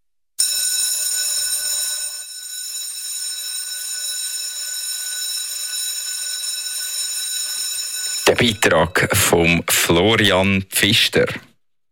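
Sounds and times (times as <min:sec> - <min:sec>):
electric school bell ringing with a metallic buzzing tone: 0:00.4 - 0:09.2
speech: 0:08.3 - 0:11.5.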